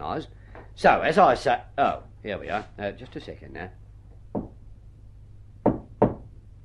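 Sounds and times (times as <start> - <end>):
speech: 0.0 - 4.4
faint low hum: 0.0 - 6.6
coded knock on a door: 4.3 - 4.6, 5.6 - 6.3.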